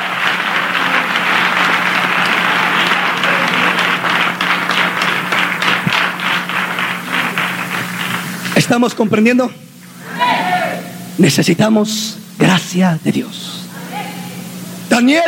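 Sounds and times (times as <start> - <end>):
audience clapping and applauding: 0.0 - 9.2
speech: 8.7 - 9.6, 11.2 - 13.6, 15.0 - 15.2.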